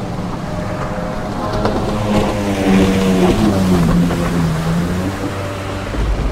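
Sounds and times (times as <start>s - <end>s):
motorcycle engines roaring at full throttle racing in heavy rain: 0.0s - 6.3s.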